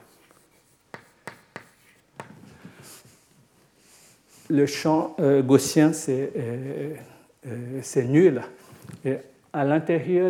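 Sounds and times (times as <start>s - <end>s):
square being drawn by hand with scratching strokes: 0.0s - 3.0s
faint scribbling: 0.0s - 4.8s
speech: 4.5s - 10.2s.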